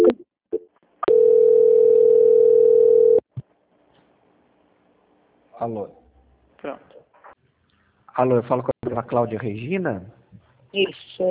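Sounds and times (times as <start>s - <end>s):
telephone line tone while a call is being transferred: 1.0s - 3.2s
speech: 5.6s - 6.0s, 6.6s - 7.0s, 8.2s - 11.2s.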